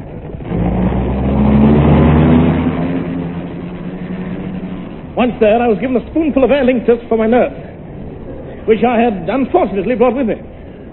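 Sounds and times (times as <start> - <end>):
car engine running and revving: 0.0 - 9.2
speech: 5.2 - 7.7, 8.7 - 10.5.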